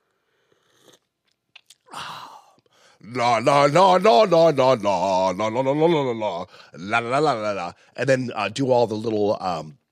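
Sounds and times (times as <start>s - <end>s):
person sipping a drink with slurps and lip smacks: 0.0s - 2.8s
breathy swallow or exhale: 0.1s - 3.0s
speech: 3.0s - 9.8s.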